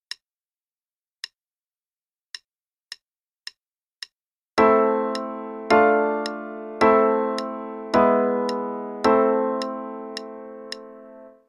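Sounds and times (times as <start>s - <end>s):
minor chord progression: 4.6s - 11.4s.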